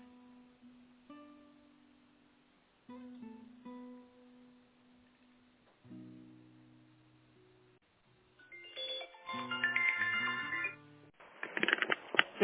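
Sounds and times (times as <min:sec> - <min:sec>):
electronic telephone ringtone over a phone line during a call transfer: 0:08.4 - 0:10.8.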